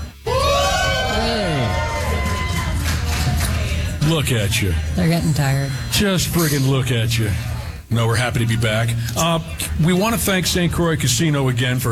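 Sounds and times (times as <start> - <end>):
live audience crowd cheering: 0.0 - 3.9
speech: 4.1 - 11.8.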